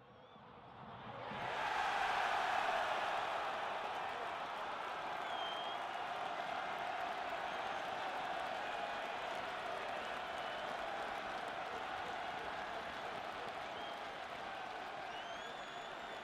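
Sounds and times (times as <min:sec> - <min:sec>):
huge stadium crowd cheering and roaring: 0:00.0 - 0:16.2
whistles in a stadium crowd: 0:00.1 - 0:00.4, 0:05.2 - 0:06.0, 0:10.0 - 0:10.9, 0:13.6 - 0:14.3, 0:14.9 - 0:16.2.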